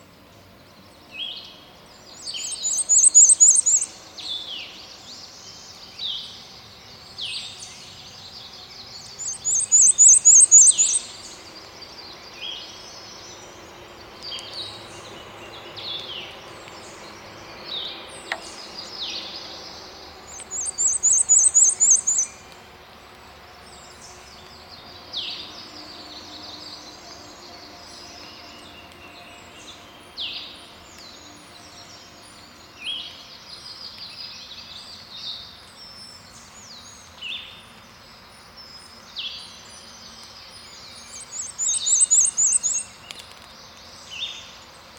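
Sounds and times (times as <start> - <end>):
Black and white Warbler Mniotilta varia: 0.0 - 44.9.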